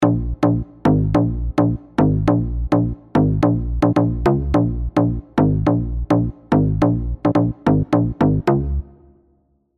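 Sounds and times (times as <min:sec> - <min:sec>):
deep bouncing bass: 0:00.0 - 0:08.8.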